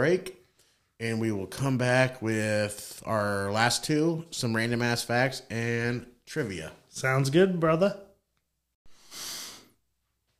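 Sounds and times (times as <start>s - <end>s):
speech: 0.0s - 0.4s, 1.0s - 8.0s
deep breath: 8.9s - 9.8s.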